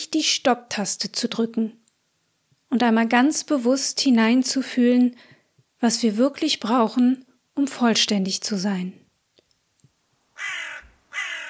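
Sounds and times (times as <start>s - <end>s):
speech: 0.1s - 1.8s, 2.7s - 9.0s
crow cawing: 10.4s - 11.4s.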